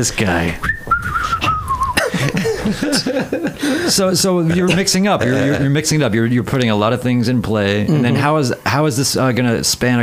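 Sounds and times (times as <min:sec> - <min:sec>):
speech: 0:00.0 - 0:00.7, 0:02.2 - 0:10.0
person whistling a melody: 0:00.6 - 0:02.1
low voiced chuckling: 0:01.4 - 0:05.8.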